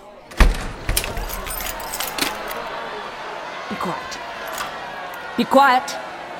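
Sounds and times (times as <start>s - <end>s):
metallic clunk of a lock turning: 0.2s - 2.8s
keys jangling as doors are locked: 0.6s - 2.8s
speech: 3.7s - 4.3s, 5.4s - 6.0s.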